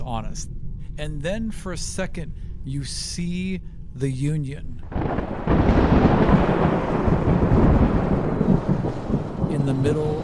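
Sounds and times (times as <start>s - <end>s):
faint hiss of rain: 0.0s - 10.2s
speech: 0.1s - 5.8s, 9.8s - 10.2s
deep rolling thunder of a raging storm: 4.9s - 10.2s.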